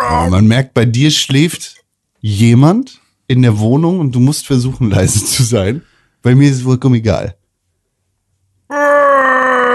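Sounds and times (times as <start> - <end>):
speech: 0.2 - 7.4
laughter: 4.9 - 5.6
person letting out a loud sustained mock scream into a microphone: 8.7 - 9.7.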